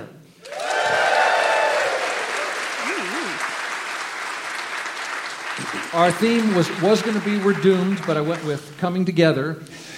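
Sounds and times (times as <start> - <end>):
brief warbling whoop: 0.4 - 3.5
scattered cheers from a theater audience: 0.4 - 3.6
large theater audience applauding: 0.4 - 8.8
speech: 6.0 - 9.7.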